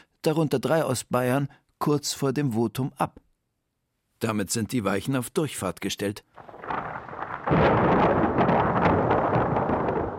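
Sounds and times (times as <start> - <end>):
speech: 0.2 - 3.2, 4.2 - 6.5
deep rolling thunder over Rome: 6.4 - 10.1
dense wash of rain over Rome: 6.4 - 10.1.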